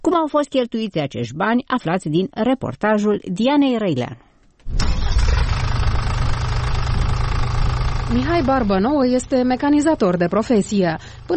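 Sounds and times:
speech: 0.2 - 4.8, 8.1 - 11.3
tractor diesel engine idling: 4.7 - 11.3.

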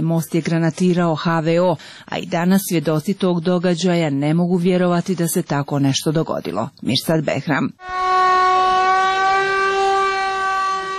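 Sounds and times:
speech: 0.0 - 8.0
civil defense general danger siren wailing in Mostar Bosnia and Herzegovina: 7.8 - 10.9.

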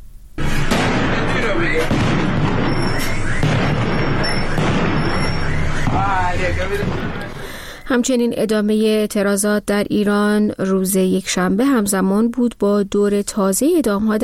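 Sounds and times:
explosions at a protesters' gathering in Sanandaj Iran: 0.4 - 7.8
gunfire at a protesters' gathering in Sanandaj Iran: 0.4 - 7.8
people shouting at a protesters' gathering in Sanandaj Iran: 1.4 - 7.5
speech: 6.5 - 7.2, 7.9 - 14.2.

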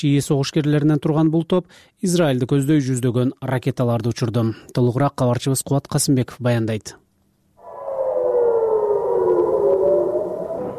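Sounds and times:
speech: 0.0 - 7.0
air raid siren wailing in northern Israel near the Lebanese border: 7.6 - 10.7.

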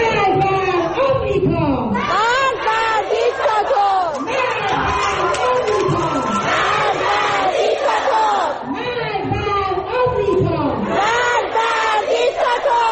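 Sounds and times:
chatter: 0.0 - 12.9
schoolchildren chanting protest slogans in unison: 2.0 - 4.6, 6.4 - 12.9.

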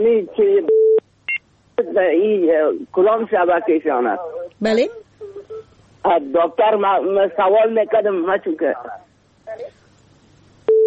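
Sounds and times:
speech: 0.0 - 0.8, 2.0 - 5.0, 6.0 - 9.7
faint murmur: 1.8 - 10.0
steady mid-pitched telephone line tone as a call is placed: 10.7 - 10.8.

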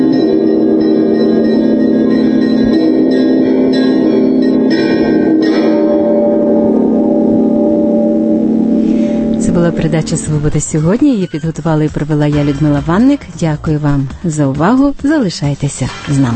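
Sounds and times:
large cathedral bell ringing in Rostov: 0.0 - 11.2
speech: 9.6 - 16.3.

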